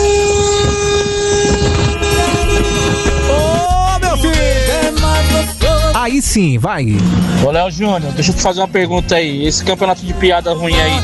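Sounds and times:
loud continuous horn blaring: 0.0 - 5.4, 6.0 - 8.6
rumbling noisy background: 0.0 - 11.0
speech: 6.3 - 11.0.

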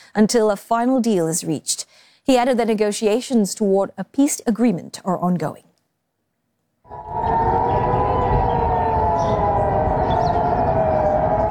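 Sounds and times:
speech: 0.1 - 5.7
air raid warning siren wailing: 6.9 - 11.4
low rumbling undertone: 6.9 - 11.4.

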